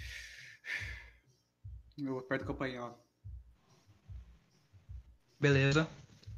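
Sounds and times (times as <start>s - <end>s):
person breathing heavily with rough breaths and gasping inhale: 0.0s - 1.2s
speech: 2.0s - 3.1s, 5.4s - 6.0s.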